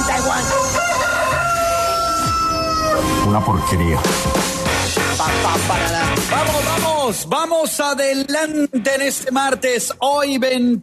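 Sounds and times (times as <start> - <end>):
rooster crowing: 0.1 - 3.2
steady tonal background: 3.0 - 6.1
speech: 3.3 - 4.5, 5.2 - 10.8.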